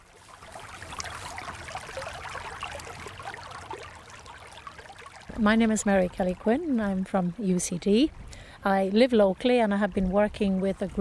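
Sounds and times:
mountain river rushing and burbling: 0.0s - 5.4s
speech: 5.4s - 11.0s.

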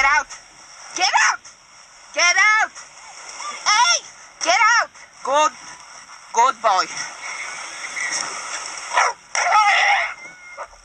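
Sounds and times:
steady outdoor hiss: 0.0s - 10.8s
speech: 1.0s - 1.4s, 5.3s - 5.6s, 6.4s - 7.1s
dog barking at a horse: 8.9s - 9.6s.

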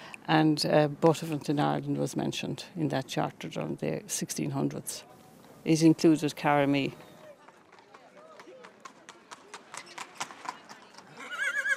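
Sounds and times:
speech: 0.3s - 7.1s
horse hooves clopping on a hard street at a street horse fair: 6.4s - 11.7s
horse whinnying at a street horse fair: 11.1s - 11.7s.

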